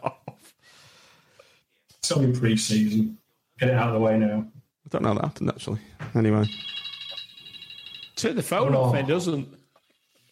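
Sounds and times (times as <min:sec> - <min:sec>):
speech: 0:02.1 - 0:06.7, 0:08.2 - 0:09.6
mobile phone ringing with a steady electronic tone: 0:06.4 - 0:09.0.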